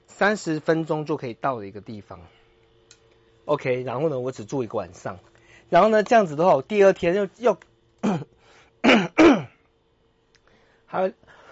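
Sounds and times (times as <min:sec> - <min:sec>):
speech: 0:00.2 - 0:02.4, 0:03.5 - 0:09.1, 0:10.9 - 0:11.4
person coughing after travelling abroad: 0:08.0 - 0:09.6
person with a lingering cough clearing throat: 0:08.0 - 0:09.6.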